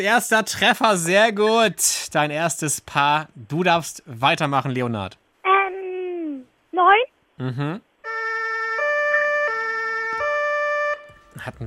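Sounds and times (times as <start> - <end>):
speech: 0.0 - 5.2, 6.8 - 7.9, 11.4 - 11.6
faint noise: 0.0 - 8.1, 10.9 - 11.6
two-tone Martinshorn emergency vehicle siren: 8.0 - 11.4.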